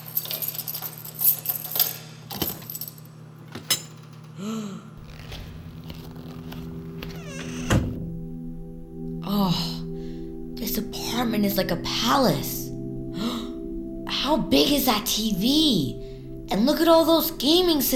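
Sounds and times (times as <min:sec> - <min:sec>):
keys taken from a pocket jingling: 0:00.0 - 0:04.4
low steady hum: 0:00.0 - 0:17.9
speech: 0:04.4 - 0:04.8, 0:11.4 - 0:12.6, 0:14.3 - 0:17.9
apartment door being worked open: 0:05.0 - 0:08.2.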